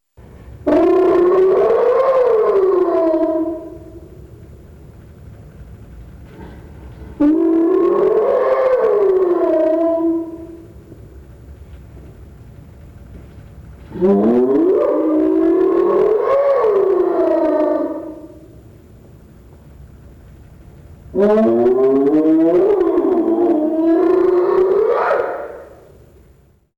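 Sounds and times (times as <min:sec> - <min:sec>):
hyena slow whoop: 0:00.7 - 0:04.4, 0:06.4 - 0:11.0, 0:13.9 - 0:18.7, 0:21.2 - 0:26.1.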